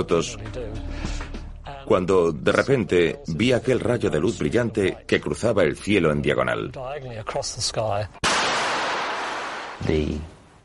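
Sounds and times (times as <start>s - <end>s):
speech: 0.0s - 1.3s, 1.9s - 8.3s, 9.8s - 10.4s
loud explosion: 8.2s - 9.8s.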